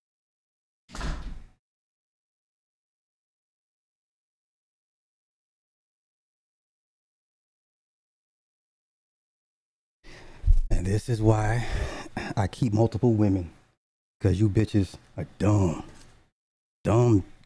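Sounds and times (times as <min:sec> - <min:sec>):
door shutting with a sliding rush and low thud: 0:00.9 - 0:01.6
speech: 0:10.9 - 0:13.6, 0:14.2 - 0:15.9, 0:16.8 - 0:17.3.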